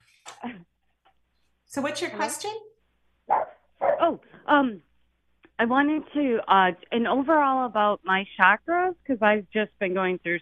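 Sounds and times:
speech: 1.7s - 2.7s, 4.1s - 4.9s, 5.6s - 10.4s
dog barking: 3.3s - 4.1s.

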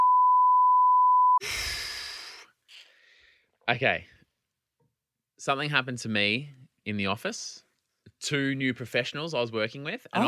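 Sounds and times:
censor beep: 0.0s - 1.4s
speech: 1.4s - 1.6s, 3.7s - 4.1s, 5.4s - 7.6s, 8.2s - 10.2s
long breathy exhale: 1.4s - 3.5s.

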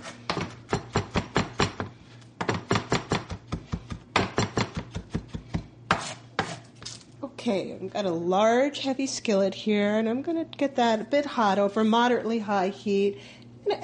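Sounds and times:
knife finely chopping garlic cloves on a board: 0.3s - 6.6s
speech: 7.4s - 13.8s.

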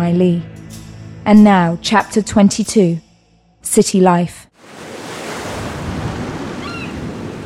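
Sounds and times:
speech: 0.0s - 0.5s, 1.2s - 3.0s, 3.6s - 4.5s
gentle ocean waves: 4.6s - 7.4s.

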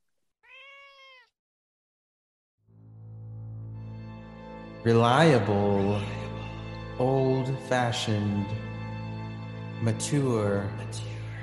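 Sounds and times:
cat meowing: 0.4s - 1.4s
speech: 4.8s - 6.2s, 7.0s - 8.7s, 9.8s - 11.1s.

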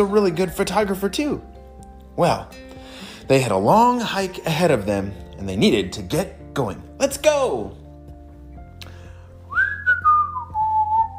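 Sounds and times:
speech: 0.0s - 1.5s, 2.2s - 2.6s, 3.3s - 7.8s
person whistling a short gliding tune: 9.5s - 11.1s.

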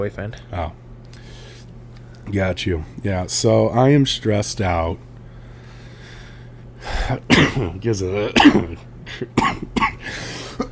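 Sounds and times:
speech: 0.0s - 0.8s, 2.3s - 5.1s, 7.1s - 10.2s
person coughing: 7.0s - 10.7s
throat clearing: 7.2s - 10.0s.

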